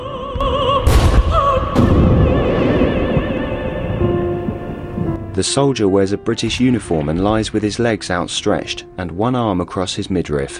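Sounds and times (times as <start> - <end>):
heavy battlefield explosions booming: 0.7 - 5.3
speech: 5.4 - 10.5.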